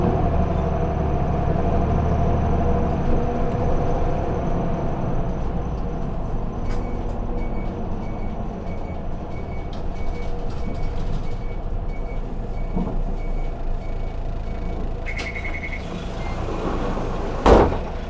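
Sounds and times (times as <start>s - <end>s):
vehicle engine rumbling from inside the cabin: 0.0s - 18.0s
sharp clunk as vehicle stops: 16.7s - 18.0s.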